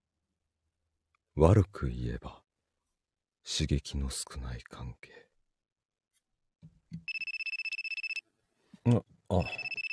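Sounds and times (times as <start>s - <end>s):
speech: 1.4s - 2.4s, 3.4s - 5.3s, 8.8s - 9.8s
phone ringtone trilling in a fast electronic pulse: 7.1s - 8.2s, 9.4s - 9.9s.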